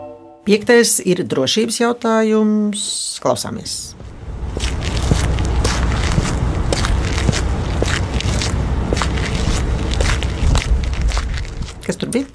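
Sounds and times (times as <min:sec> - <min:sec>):
speech: 0:00.5 - 0:04.0
crunching footsteps of a person walking outdoors: 0:04.0 - 0:12.3.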